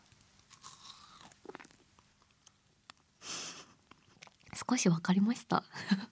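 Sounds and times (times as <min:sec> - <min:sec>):
crunchy bite into crisp smooth-textured food: 0:00.4 - 0:01.9
speech: 0:04.7 - 0:06.0.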